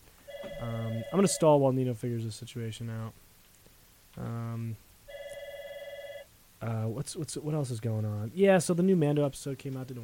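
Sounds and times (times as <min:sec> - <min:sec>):
phone ringing for an incoming call: 0:00.2 - 0:01.6, 0:05.1 - 0:06.3
speech: 0:00.6 - 0:03.3, 0:04.2 - 0:04.9, 0:06.6 - 0:10.0.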